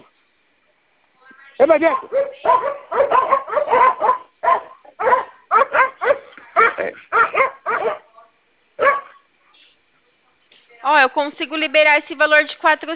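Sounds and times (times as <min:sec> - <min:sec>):
speech: 0:01.6 - 0:03.9, 0:06.8 - 0:07.4, 0:10.9 - 0:12.9
dog barking: 0:01.8 - 0:08.1, 0:08.8 - 0:09.3.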